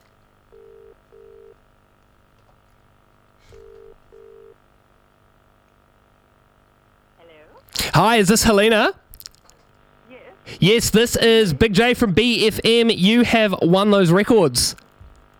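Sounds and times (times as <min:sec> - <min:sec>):
low steady hum: 0:00.0 - 0:15.3
double-burst telephone ring tones on an outgoing call: 0:00.5 - 0:01.6, 0:03.5 - 0:04.6
speech: 0:08.0 - 0:09.0, 0:10.5 - 0:14.8.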